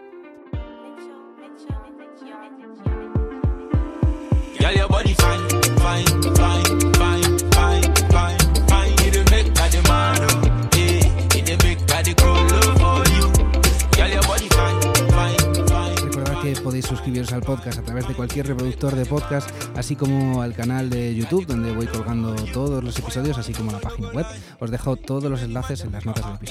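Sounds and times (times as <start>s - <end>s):
instrumental band music track with driving beat: 2.9s - 23.7s
speech: 16.7s - 26.4s.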